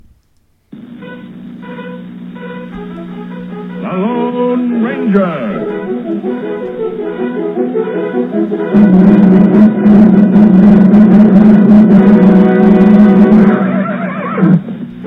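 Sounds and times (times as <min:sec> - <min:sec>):
orchestral music swell: 0:01.0 - 0:14.0
speech: 0:05.0 - 0:06.6
horse whinnying: 0:13.6 - 0:15.0.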